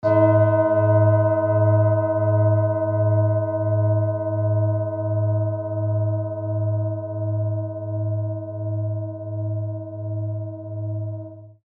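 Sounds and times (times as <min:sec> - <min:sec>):
Tibetan singing bowl: 0:00.0 - 0:11.6.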